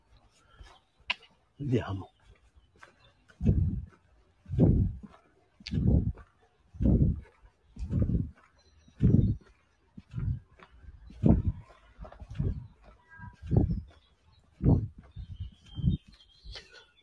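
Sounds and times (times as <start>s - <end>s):
many birds calling with low throaty repeated notes outdoors: 0.0s - 17.0s
speech: 1.6s - 2.2s, 3.4s - 3.9s, 5.7s - 6.1s
faint thin bird chirps: 13.0s - 17.0s.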